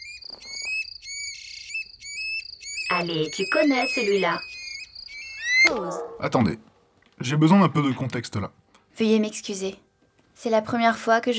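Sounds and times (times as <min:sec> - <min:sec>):
song thrush singing: 0:00.0 - 0:06.2
speech: 0:03.0 - 0:04.5, 0:05.6 - 0:11.3.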